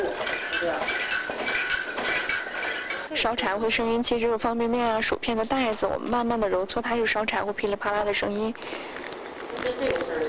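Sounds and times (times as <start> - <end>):
shaken saddle as sound-effect prop for a horse-drawn carriage: 0.0 - 3.1
speech: 0.6 - 0.9, 3.2 - 9.0, 9.6 - 10.2.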